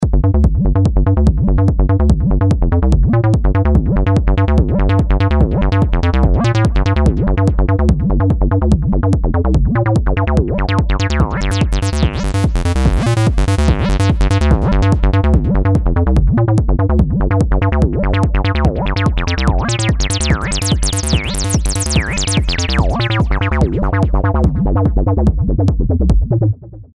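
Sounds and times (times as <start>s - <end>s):
acid bassline: 0.0s - 26.9s.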